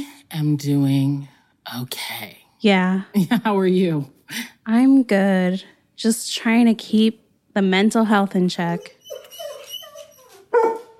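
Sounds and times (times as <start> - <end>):
speech: 0.0 - 9.0
Airedale Terrier whimpering: 8.7 - 10.9
Airedale Terrier barking: 10.5 - 10.9.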